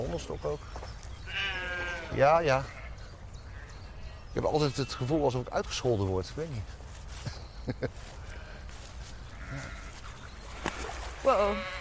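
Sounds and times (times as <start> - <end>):
faint outdoor background: 0.0 - 11.7
speech: 0.2 - 2.8, 4.4 - 8.2, 9.5 - 9.8, 11.2 - 11.7
sheep bleating: 1.3 - 3.0, 9.3 - 9.9, 11.4 - 11.7
laughter: 7.2 - 8.2.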